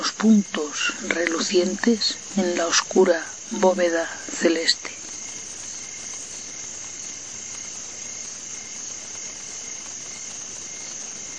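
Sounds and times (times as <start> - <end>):
crickets chirping at night: 0.0 - 11.3
speech: 0.2 - 5.0.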